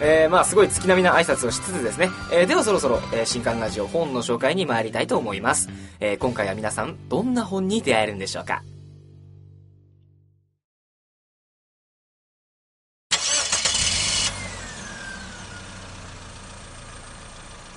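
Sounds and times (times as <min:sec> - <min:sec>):
speech: 0:00.0 - 0:08.7
car engine cranking and catching: 0:13.1 - 0:17.7
car engine idle rumble: 0:13.6 - 0:17.7.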